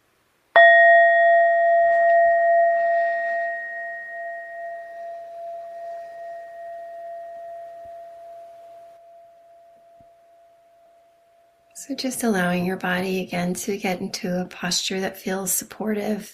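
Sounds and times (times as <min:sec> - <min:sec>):
meditation bell ringing: 0:00.6 - 0:11.8
speech: 0:11.9 - 0:16.3.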